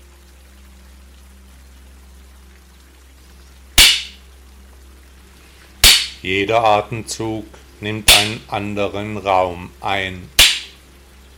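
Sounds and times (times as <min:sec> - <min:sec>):
master's stick tapping: 0:03.8 - 0:04.2, 0:05.8 - 0:06.2, 0:08.1 - 0:08.5, 0:10.4 - 0:10.8
speech: 0:06.2 - 0:10.4.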